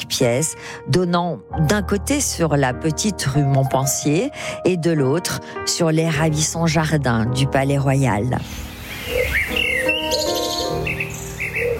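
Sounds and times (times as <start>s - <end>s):
speech: 0.1s - 9.4s
bright bird chirps and whistles: 9.0s - 11.7s
pigeons perched in chestnut trees beside the Palais Royal gardens cooing: 9.0s - 11.7s.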